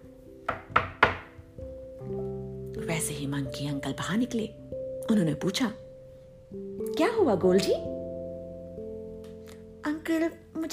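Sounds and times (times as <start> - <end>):
soft sustained musical background: 0.0 - 10.7
knocking on a wooden door: 0.5 - 1.5
speech: 3.0 - 5.8, 6.5 - 7.9.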